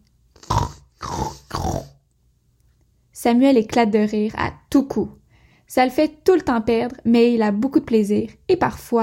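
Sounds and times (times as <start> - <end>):
person imitating pig grunts through the nose: 0.4 - 2.0
speech: 3.2 - 9.0.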